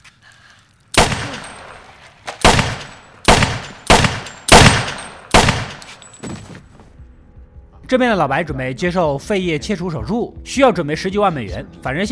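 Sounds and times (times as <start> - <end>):
pistol shots fired by a child: 1.0 - 6.0
speech: 7.9 - 12.1.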